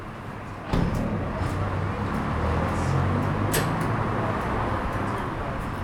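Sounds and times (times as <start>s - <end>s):
low traffic rumble on a narrow city street: 0.1s - 5.8s
sharp clicks and knocks: 0.7s - 5.2s
vehicle passing with deep engine rumble: 0.8s - 5.8s.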